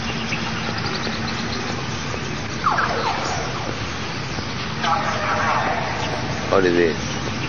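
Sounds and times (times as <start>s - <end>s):
steady traffic rumble: 0.0s - 7.4s
police car siren wailing as the car passes by: 2.6s - 3.9s, 4.8s - 7.0s
speech: 6.6s - 7.1s.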